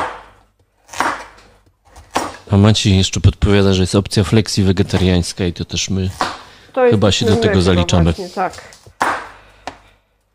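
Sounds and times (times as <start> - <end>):
knife chopping food into bite-sized pieces: 0.0 - 2.4
speech: 2.5 - 8.8.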